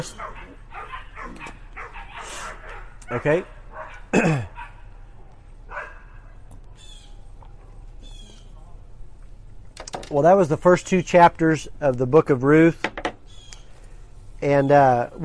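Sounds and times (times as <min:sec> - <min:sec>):
speech: 0:00.0 - 0:00.3, 0:03.1 - 0:04.5, 0:10.1 - 0:13.0, 0:14.4 - 0:15.2
dogs barking in Raymore, Missouri: 0:00.0 - 0:06.5
steady low hum: 0:00.0 - 0:15.2.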